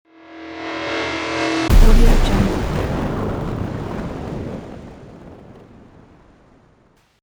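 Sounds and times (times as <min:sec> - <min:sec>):
machine thunder explosion transition: 0:01.7 - 0:07.0.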